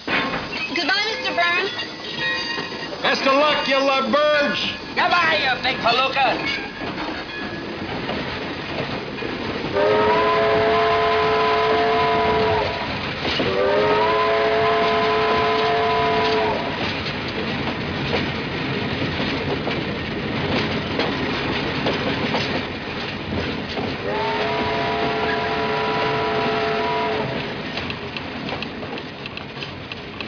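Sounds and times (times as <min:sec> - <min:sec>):
train departing with rumbling clatter of wheels: 0:00.0 - 0:30.2
speech: 0:03.1 - 0:06.6
harmonic train whistle blasts: 0:09.7 - 0:16.8, 0:24.0 - 0:27.4.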